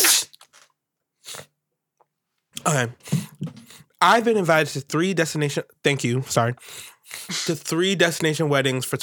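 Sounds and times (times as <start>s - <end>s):
person sneezing: 0.0s - 0.4s, 7.2s - 7.6s
speech: 2.6s - 3.2s, 4.0s - 9.0s.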